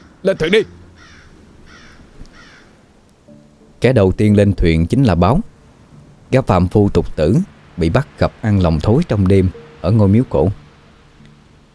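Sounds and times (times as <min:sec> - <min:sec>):
flock of crows cawing in rain: 0:00.0 - 0:02.9
steady low rumble and hiss: 0:00.0 - 0:11.7
speech: 0:00.2 - 0:00.8, 0:03.8 - 0:05.5, 0:06.3 - 0:10.6.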